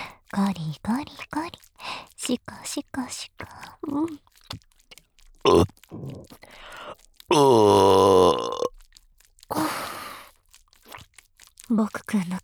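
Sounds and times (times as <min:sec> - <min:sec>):
speech: 0:00.3 - 0:04.7, 0:05.4 - 0:08.7, 0:11.7 - 0:12.4
shorter breathy crunchy bursts: 0:03.4 - 0:11.7
loud drawn-out burp: 0:05.4 - 0:06.4, 0:07.3 - 0:08.7.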